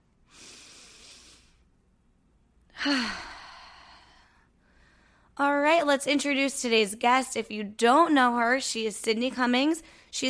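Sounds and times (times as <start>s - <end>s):
slow deep breath during a breathing exercise: 0.2s - 1.8s, 2.8s - 5.4s
voiced sigh on the exhale: 2.7s - 4.3s
speech: 2.8s - 3.3s, 5.4s - 10.2s.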